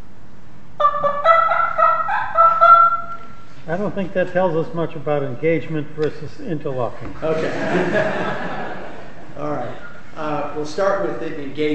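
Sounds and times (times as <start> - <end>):
turkeys gobbling: 0.8 - 3.6
speech: 3.7 - 8.8, 10.6 - 11.7
laughter: 7.2 - 10.1.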